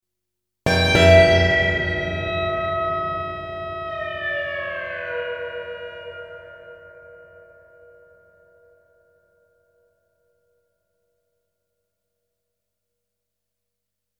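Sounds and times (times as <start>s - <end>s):
orchestral phrase: 0.7s - 6.4s.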